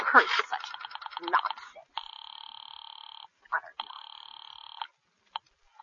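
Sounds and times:
speech: 0:00.1 - 0:00.5
rapidly pulsing electric telephone ring: 0:00.6 - 0:04.9.

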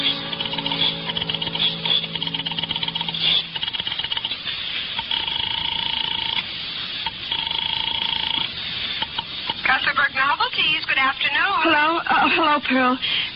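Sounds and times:
steady telephone tones humming: 0:00.0 - 0:09.2
crackly hissy background: 0:00.0 - 0:12.0
rotary telephone dial clicking and whirring: 0:02.2 - 0:04.4, 0:05.0 - 0:06.4, 0:07.0 - 0:09.3
speech: 0:12.7 - 0:13.3.

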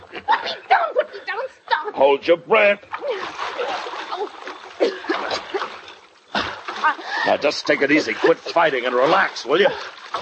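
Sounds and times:
speech: 0:02.0 - 0:03.0, 0:06.8 - 0:10.0
people wading across a water-filled ditch, sloshing and splashing: 0:02.8 - 0:10.1.

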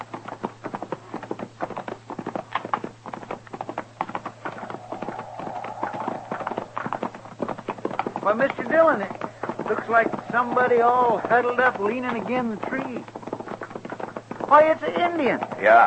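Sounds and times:
horses' hooves clip-clopping as riders ride over: 0:00.0 - 0:15.8
speech: 0:08.3 - 0:13.2, 0:14.5 - 0:15.8.

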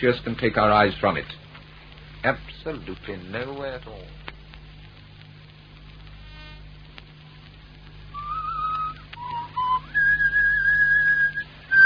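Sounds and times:
speech: 0:00.0 - 0:01.4, 0:02.2 - 0:04.3
person whistling a short tune: 0:08.2 - 0:11.8.

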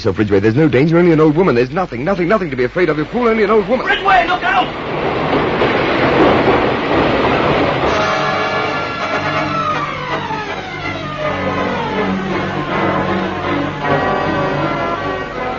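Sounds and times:
speech: 0:00.0 - 0:05.4
underground train arriving at Hyde Park Corner underground station: 0:00.0 - 0:15.5.

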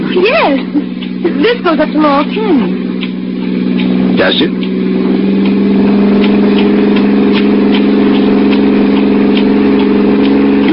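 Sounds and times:
car engine humming inside a moving car: 0:00.0 - 0:10.7
faint rhythmic ticking: 0:00.0 - 0:10.7
speech: 0:00.2 - 0:02.9, 0:04.2 - 0:04.7.

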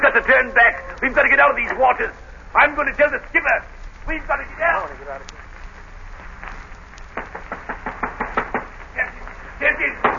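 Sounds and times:
speech: 0:00.2 - 0:05.4, 0:09.6 - 0:10.1
rapid sharp knocking on a wooden door: 0:07.2 - 0:08.7.

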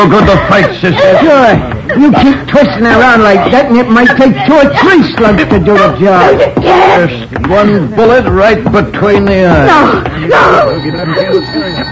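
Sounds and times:
laughter: 0:00.0 - 0:06.6
speech: 0:00.0 - 0:11.8
telephone ringing with a buzzy electric tone: 0:10.3 - 0:11.8.

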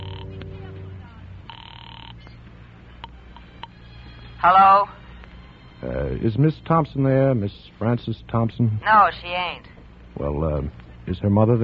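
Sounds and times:
telephone ringback tone through the line: 0:00.0 - 0:02.2
low steady hum: 0:00.0 - 0:11.6
speech: 0:04.4 - 0:05.0, 0:06.1 - 0:11.6.

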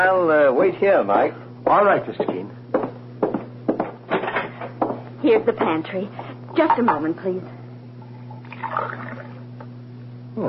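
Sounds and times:
speech: 0:00.0 - 0:02.6, 0:05.2 - 0:07.6
low hum: 0:00.0 - 0:10.4
tap water running into a glass in a pantry: 0:08.0 - 0:09.5.

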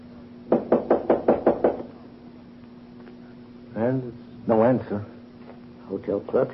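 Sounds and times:
faint steady hum: 0:00.0 - 0:06.5
knocking on a hotel room door: 0:00.5 - 0:01.9
speech: 0:03.8 - 0:05.2, 0:05.9 - 0:06.5.

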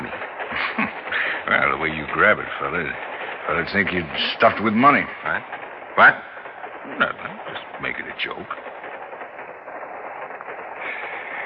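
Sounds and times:
passenger train rolling along its rails: 0:00.0 - 0:11.4
speech: 0:01.5 - 0:06.3, 0:06.9 - 0:08.7.

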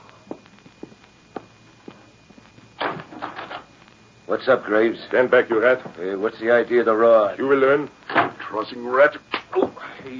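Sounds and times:
rush of broadband noise: 0:00.0 - 0:10.1
soft footsteps: 0:00.2 - 0:02.7
speech: 0:04.3 - 0:10.1.

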